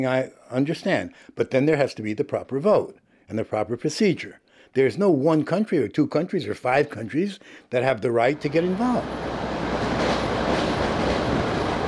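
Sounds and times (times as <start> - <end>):
speech: 0.0 - 9.4
subway train running through central Moscow: 8.3 - 11.8
subway train wheels rattling on track: 8.4 - 11.8.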